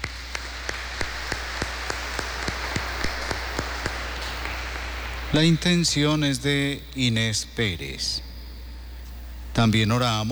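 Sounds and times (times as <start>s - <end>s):
audience clapping in a steady rhythm: 0.0s - 6.7s
low hum: 0.0s - 10.2s
speech: 5.3s - 8.3s, 9.6s - 10.2s.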